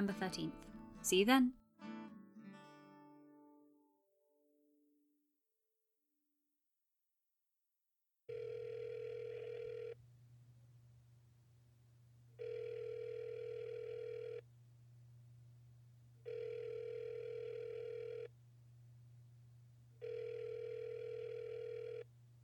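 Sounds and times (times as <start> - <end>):
speech: 0.0 - 1.6
telephone ringback tone heard through the caller's line: 8.3 - 10.0, 12.4 - 14.4, 16.2 - 18.3, 20.0 - 22.1
steady low hum: 10.0 - 22.4.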